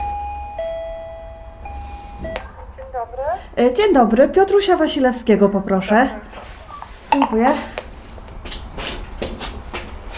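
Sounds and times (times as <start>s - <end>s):
apartment intercom ringing on a building wall: 0.0s - 2.6s
low hum: 0.0s - 10.1s
speech: 3.6s - 6.4s, 7.2s - 7.7s.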